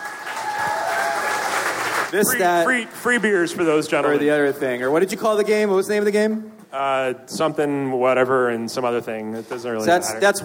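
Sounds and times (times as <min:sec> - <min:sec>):
audience applause after guests are thanked: 0:00.0 - 0:02.9
speech: 0:02.1 - 0:10.4.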